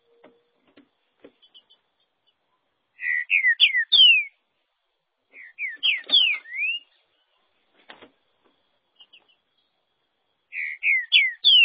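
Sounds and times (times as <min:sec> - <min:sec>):
green-winged saltator singing slurred whistles: 0:03.0 - 0:04.4, 0:05.3 - 0:07.0, 0:10.5 - 0:11.6.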